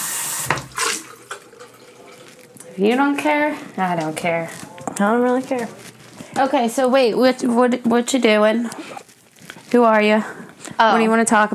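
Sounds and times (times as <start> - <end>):
water running from a tap: 0.0 - 4.2
speech: 2.8 - 5.8, 6.4 - 9.0, 9.7 - 11.5.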